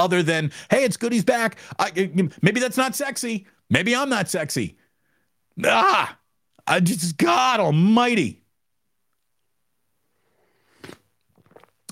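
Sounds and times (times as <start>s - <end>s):
speech: 0.0s - 4.8s, 5.6s - 8.4s
person slurping coffee from a cup: 10.1s - 11.9s
soft mouth and swallowing sounds: 10.7s - 11.9s.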